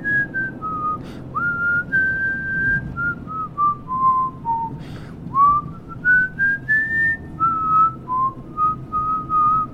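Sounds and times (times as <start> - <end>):
low rumbling like a running car: 0.0 - 9.7
man whistling a slow hymn-like melody: 0.0 - 9.7.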